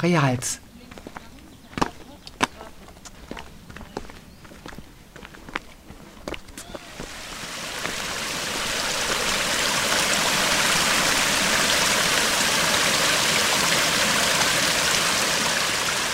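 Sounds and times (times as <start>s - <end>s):
speech: 0.0s - 0.6s
river water rushing through a limestone-sandstone gorge: 6.6s - 16.1s.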